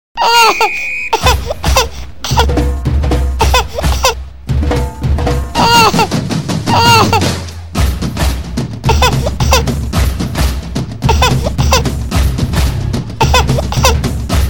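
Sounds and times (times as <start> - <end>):
baby crying: 0.2 - 2.5, 3.4 - 4.2, 5.6 - 7.4, 8.8 - 9.7, 11.0 - 11.9, 13.2 - 14.0
drum: 1.1 - 14.4.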